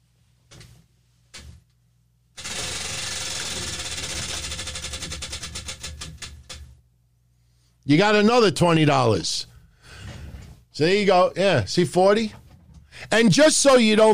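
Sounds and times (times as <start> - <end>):
prize wheel with dollar amounts being spun, pegs clicking: 2.4 - 6.7
speech: 7.9 - 9.5, 10.8 - 12.4, 13.0 - 14.1.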